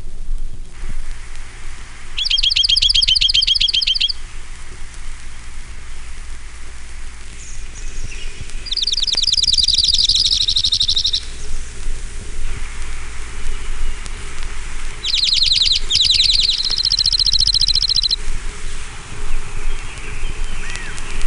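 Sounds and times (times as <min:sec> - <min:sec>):
steady hiss: 0:00.0 - 0:21.2
junco calls: 0:02.2 - 0:04.4, 0:08.6 - 0:11.5, 0:15.0 - 0:18.2.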